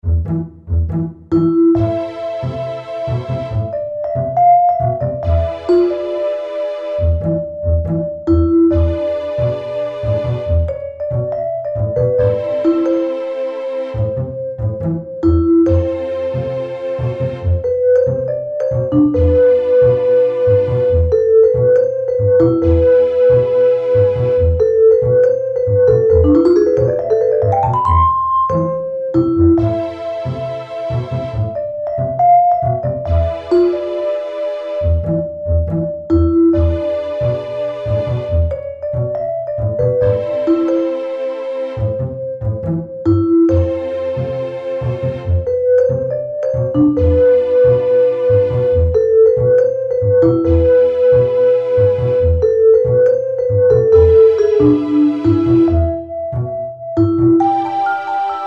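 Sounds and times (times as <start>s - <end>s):
vibraphone music: 0.0s - 58.4s.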